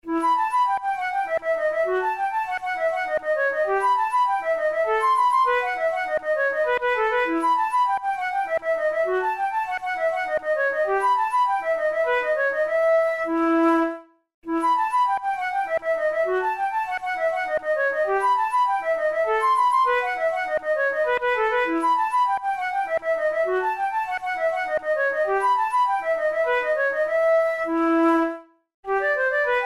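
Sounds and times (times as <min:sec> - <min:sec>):
flute piece: 0:00.0 - 0:29.6.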